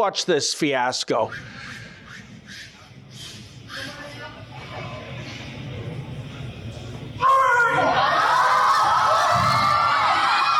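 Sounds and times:
speech: 0:00.0 - 0:01.8
large crowd cheering and shouting at a powerlifting competition: 0:07.2 - 0:10.5.

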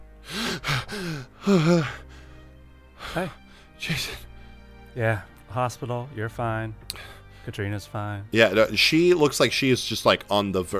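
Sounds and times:
loud gasping breaths of someone jolting awake: 0:00.2 - 0:03.8, 0:06.9 - 0:07.5
speech: 0:01.0 - 0:02.0, 0:03.1 - 0:04.3, 0:05.0 - 0:10.7.

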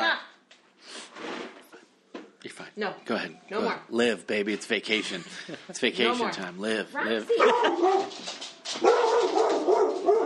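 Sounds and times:
speech: 0:02.5 - 0:09.4
laughter: 0:05.0 - 0:06.0, 0:07.3 - 0:08.2
dog barking at a man: 0:07.3 - 0:10.2.

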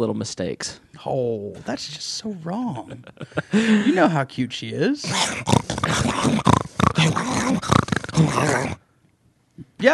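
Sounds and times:
speech: 0:00.0 - 0:08.8, 0:09.8 - 0:09.9
laughter: 0:02.8 - 0:04.2
female pug snorting, grunting and groaning: 0:05.0 - 0:08.8.

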